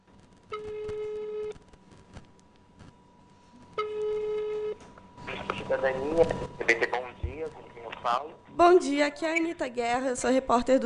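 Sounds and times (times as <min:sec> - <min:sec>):
telephone call ringing out with buzzing ring tones: 0:00.5 - 0:01.6, 0:03.8 - 0:04.8
speech: 0:05.7 - 0:10.8.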